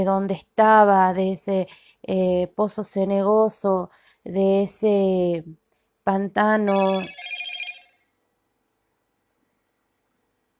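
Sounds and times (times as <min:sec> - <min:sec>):
speech: 0:00.0 - 0:07.3
mobile phone ringing: 0:06.7 - 0:08.1.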